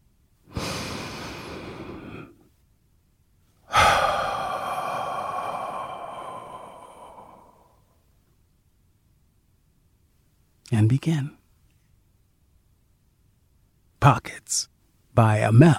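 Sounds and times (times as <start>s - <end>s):
deep breath drawn in and let out: 0.5s - 2.5s, 3.6s - 8.0s
speech: 10.7s - 11.4s, 14.0s - 15.7s.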